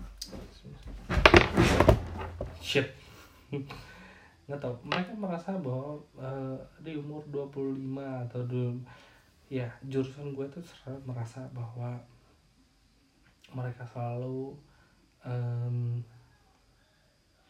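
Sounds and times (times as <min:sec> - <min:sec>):
door being closed: 0:01.1 - 0:02.6
speech: 0:02.7 - 0:03.0, 0:03.5 - 0:03.9, 0:04.5 - 0:12.1, 0:13.5 - 0:16.1.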